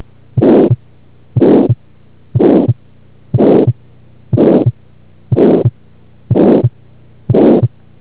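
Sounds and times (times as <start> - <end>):
heart murmur from aortic stenosis heart valve defect: 1.4 - 1.8, 2.4 - 2.8, 3.4 - 3.8, 4.4 - 7.8.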